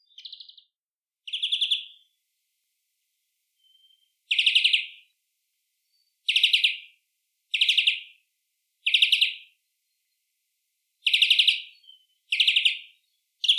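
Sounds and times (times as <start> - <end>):
European greenfinch Chloris chloris harsh buzzy chirps: 0.0 - 0.7, 1.3 - 2.0, 3.6 - 5.1, 5.9 - 8.1, 8.8 - 9.5, 11.0 - 13.5.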